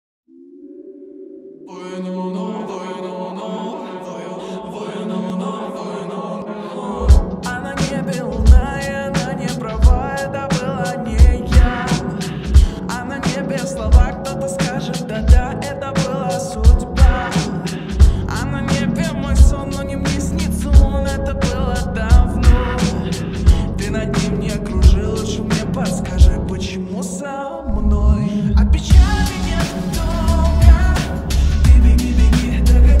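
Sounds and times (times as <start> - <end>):
bass-boosted sound with reverb: 7.0 - 26.9, 27.7 - 32.9.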